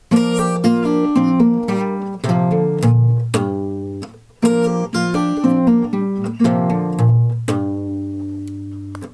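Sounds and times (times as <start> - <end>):
guitar minor embellishment lick in E shape in C: 0.0 - 9.1.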